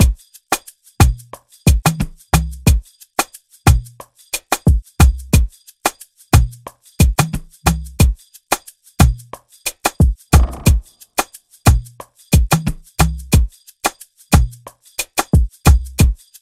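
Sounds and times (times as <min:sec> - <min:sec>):
90 bpm afrobeat drum loop: 0:00.0 - 0:02.9, 0:03.7 - 0:16.3.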